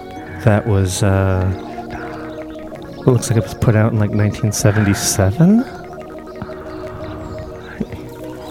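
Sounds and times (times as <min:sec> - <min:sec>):
speech: 0:00.4 - 0:01.7, 0:03.0 - 0:05.8
recorded whale song played from a vinyl record: 0:01.5 - 0:08.4.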